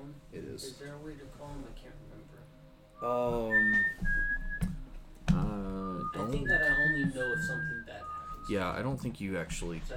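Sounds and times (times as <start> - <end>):
speech: 0.2 - 4.4, 5.3 - 9.9
person whistling a clear high tone to call a pet: 3.0 - 4.8, 5.5 - 8.7.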